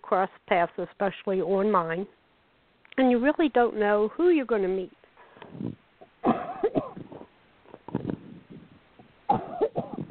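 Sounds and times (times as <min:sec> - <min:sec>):
speech: 0:00.1 - 0:02.2, 0:03.0 - 0:05.8
person coughing: 0:06.2 - 0:07.3, 0:09.3 - 0:10.1.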